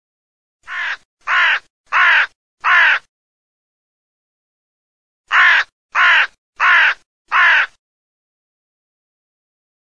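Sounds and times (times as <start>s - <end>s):
crow cawing: 0.6s - 3.1s, 5.3s - 7.8s.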